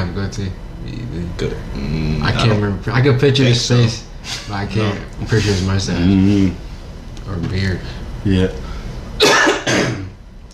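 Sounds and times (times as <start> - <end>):
speech: 0.2 - 6.6, 7.3 - 8.6, 9.2 - 10.0
harsh breathy coughs: 9.2 - 10.2.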